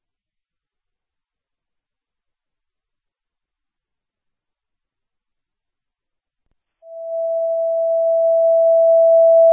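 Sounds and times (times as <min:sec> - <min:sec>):
dispatch paging tone for an ambulance medical transfer: 0:06.9 - 0:09.5.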